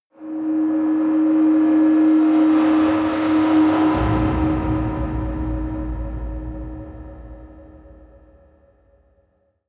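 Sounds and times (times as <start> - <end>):
sci-fi hum: 1.4 - 9.2
sci-fi whoosh: 2.3 - 9.0.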